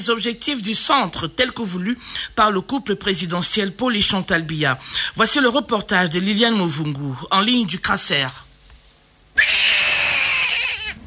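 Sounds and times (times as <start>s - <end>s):
speech: 0.0s - 8.4s, 9.4s - 9.8s
newborn baby conceived by in vitro fertilisation crying at a fertility centre: 9.4s - 11.0s.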